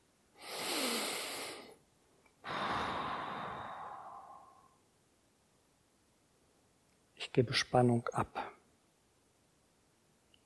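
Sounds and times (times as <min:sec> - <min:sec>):
loud deliberate breathing in and out: 0:00.4 - 0:01.8, 0:02.4 - 0:04.8
speech: 0:07.4 - 0:08.5.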